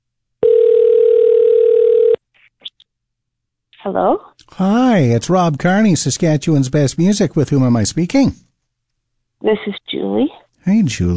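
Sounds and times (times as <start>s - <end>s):
telephone line tone as a phone number is called: 0.4s - 2.2s
speech: 3.9s - 8.5s, 9.4s - 11.1s.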